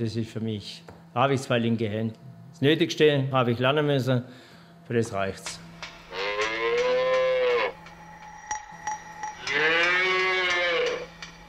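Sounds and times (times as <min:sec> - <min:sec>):
speech: 0:00.0 - 0:05.6
young heifers mooing on a dairy farm: 0:06.1 - 0:07.8, 0:09.5 - 0:11.1.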